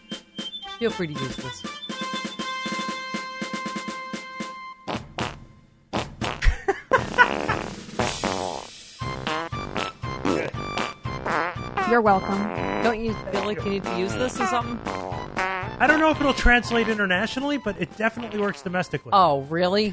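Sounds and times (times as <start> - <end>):
speech: 0.8 - 1.8, 11.9 - 15.0, 15.8 - 19.9
novelty fart sound effect of tuned buzzy farting notes played like a patriotic melody: 4.9 - 16.1, 18.2 - 18.8.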